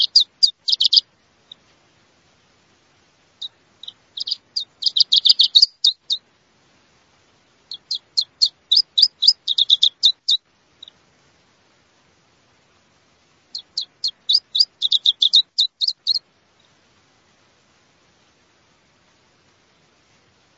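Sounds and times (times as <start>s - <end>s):
male Iberian chiffchaff song of accelerating sharp notes: 3.4s - 6.2s, 7.7s - 10.4s, 13.6s - 16.2s.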